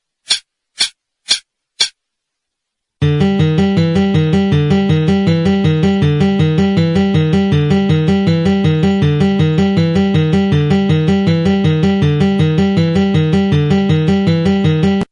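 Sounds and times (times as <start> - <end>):
guitar alternate picking: 3.0 - 15.0.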